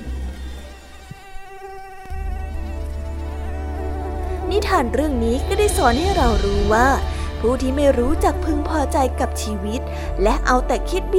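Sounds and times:
mosquito whining: 0:00.1 - 0:07.4
speech: 0:04.6 - 0:11.1.

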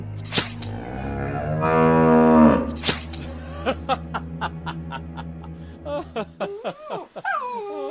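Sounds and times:
cow mooing long and loud: 0:00.7 - 0:02.8
laughter: 0:03.2 - 0:07.4.

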